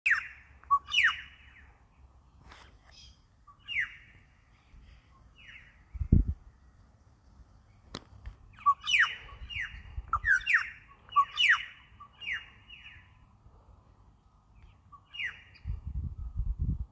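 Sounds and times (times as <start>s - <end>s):
Australasian figbird Sphecotheres vieilloti calling: 0.1s - 1.7s, 2.8s - 5.9s, 8.4s - 13.3s, 14.6s - 15.8s.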